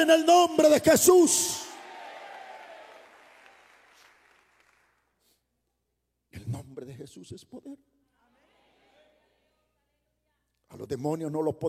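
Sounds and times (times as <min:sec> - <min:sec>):
speech: 0:00.0 - 0:01.7, 0:07.1 - 0:08.0, 0:10.7 - 0:11.6
congregation clapping: 0:01.5 - 0:05.3.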